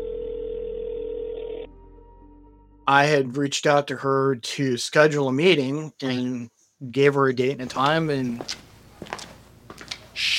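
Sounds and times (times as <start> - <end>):
telephone dial tone of a phone call: 0.0 - 1.7
speech: 2.9 - 8.7.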